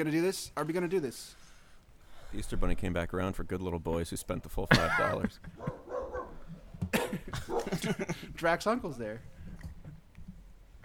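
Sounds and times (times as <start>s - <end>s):
speech: 0.0s - 1.4s, 2.3s - 5.8s, 6.9s - 9.4s
laughter: 4.7s - 5.9s, 6.9s - 8.5s
person barking to imitate a gorilla: 7.0s - 7.9s.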